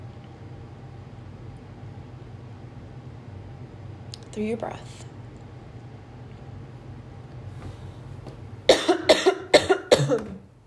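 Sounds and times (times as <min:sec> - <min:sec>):
speech: 0:04.4 - 0:05.1
person coughing after swallowing down the wrong pipe: 0:08.7 - 0:10.4.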